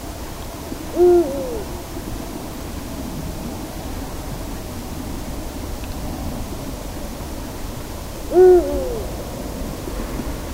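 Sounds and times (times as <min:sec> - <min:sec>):
low background hiss: 0:00.0 - 0:10.5
Eurasian eagle-owl giving a deep steady hoot: 0:00.9 - 0:01.9, 0:08.3 - 0:09.2.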